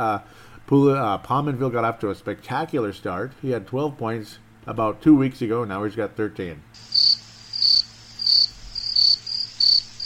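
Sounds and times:
speech: 0:00.0 - 0:07.1
faint low hum: 0:00.0 - 0:10.0
crickets chirping: 0:06.8 - 0:10.0.

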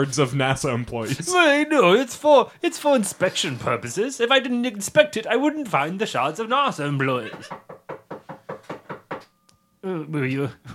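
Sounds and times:
speech: 0:00.0 - 0:07.7, 0:09.8 - 0:10.7
firm knocks on a door: 0:07.2 - 0:09.3.

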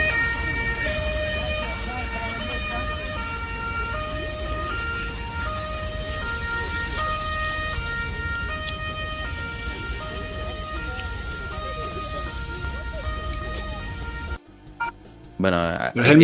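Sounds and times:
laughter: 0:00.0 - 0:14.4
heavy rumble of motorcade engines and traffic: 0:00.0 - 0:16.2
murmur of voices: 0:00.0 - 0:16.2
two-tone escort sirens of a motorcade: 0:00.0 - 0:16.2
speech: 0:15.4 - 0:16.2.

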